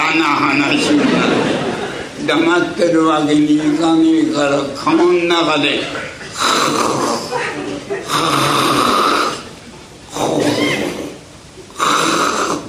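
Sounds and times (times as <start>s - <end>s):
speech: 0.1s - 1.6s, 2.2s - 8.8s
laughter: 0.6s - 2.5s, 7.1s - 8.3s
performer's voice imitating snoring in a comic storytelling act: 6.3s - 7.3s, 8.0s - 9.5s, 10.1s - 12.6s.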